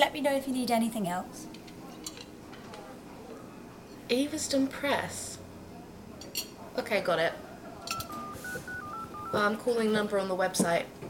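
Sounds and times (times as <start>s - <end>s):
speech: 0.0s - 1.6s, 4.1s - 5.4s, 6.3s - 7.4s, 9.3s - 11.0s
low murmur: 0.0s - 11.0s
cutlery set down on a table: 1.6s - 2.9s, 6.2s - 6.6s, 7.8s - 8.2s.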